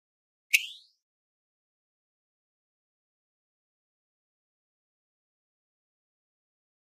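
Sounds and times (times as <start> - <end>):
high-frequency electronic whistle from a button: 0.5 - 1.0.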